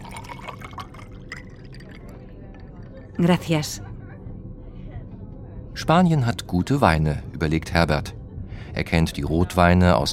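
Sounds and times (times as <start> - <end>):
still water pouring into a glass: 0.0 - 2.5
faint murmur: 0.0 - 10.1
speech: 3.2 - 3.9, 5.9 - 8.2, 8.8 - 10.1.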